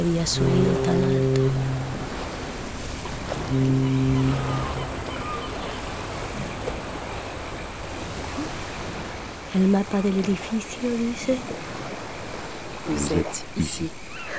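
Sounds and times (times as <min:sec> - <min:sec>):
speech: 0:00.0 - 0:01.8, 0:03.5 - 0:04.8, 0:09.5 - 0:11.8, 0:12.9 - 0:14.3
steady ocean surf and waves: 0:00.0 - 0:14.3
low horn: 0:00.3 - 0:05.9.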